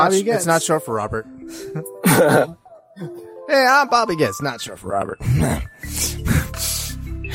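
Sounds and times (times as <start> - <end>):
speech: 0.0 - 6.7
person making an exaggerated raspy nasal sniff mimicking snorting cocaine: 5.3 - 7.0.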